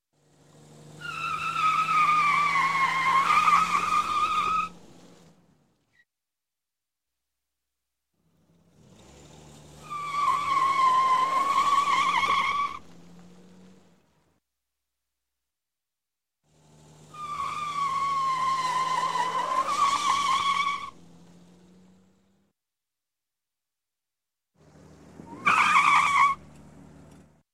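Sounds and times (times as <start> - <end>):
car tires squealing while pulling away: 0.4 - 5.3, 8.5 - 13.9, 16.5 - 22.2, 24.6 - 27.3.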